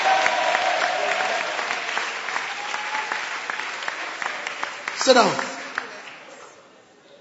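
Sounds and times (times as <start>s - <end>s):
audience clapping hands: 0.0s - 6.8s
speech: 5.0s - 5.5s
faint audience murmurs: 5.5s - 7.1s.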